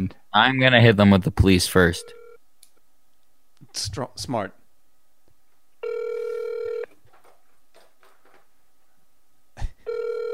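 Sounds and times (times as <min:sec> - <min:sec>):
speech: 0:00.1 - 0:02.2, 0:03.8 - 0:04.6
telephone ringing with a steady electronic tone: 0:02.0 - 0:02.4, 0:05.8 - 0:07.0, 0:09.9 - 0:10.3.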